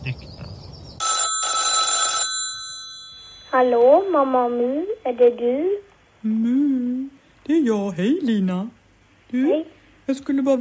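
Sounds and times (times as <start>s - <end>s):
speech: 0.1s - 0.3s, 3.6s - 10.5s
telephone ringing as a call is placed: 1.0s - 5.1s.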